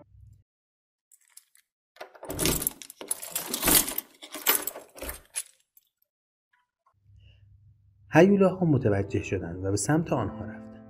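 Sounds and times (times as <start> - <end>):
keys jangling and clinking: 1.2 - 5.7
speech: 8.1 - 10.6.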